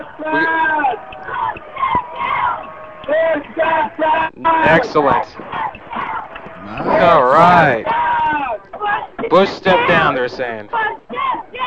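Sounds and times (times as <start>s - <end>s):
crowd screaming and yelling: 0.0s - 9.1s
speech: 0.2s - 1.3s, 3.9s - 5.5s, 6.7s - 8.0s, 9.3s - 11.0s.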